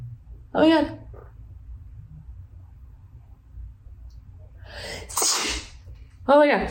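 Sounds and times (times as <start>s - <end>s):
low room rumble: 0.0s - 6.7s
speech: 0.6s - 1.0s, 6.3s - 6.7s
person sneezing: 4.9s - 5.8s.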